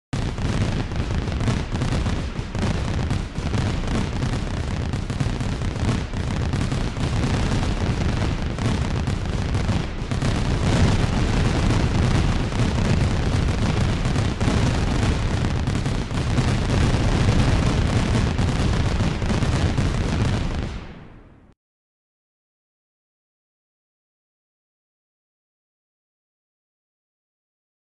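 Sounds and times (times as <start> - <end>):
firework with long burst: 0.2 - 21.4.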